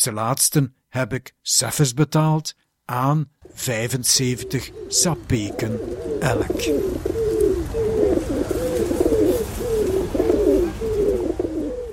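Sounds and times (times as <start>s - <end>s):
speech: 0.0s - 7.4s
pigeons cooing in low throaty rolling phrases: 3.4s - 11.9s.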